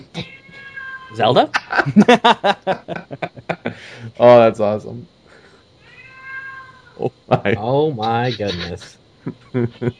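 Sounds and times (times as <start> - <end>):
female pet cat meowing: 0.2 - 1.2, 5.9 - 6.9
speech: 1.1 - 5.2, 7.0 - 9.9
laughter: 1.5 - 3.9, 7.3 - 9.9.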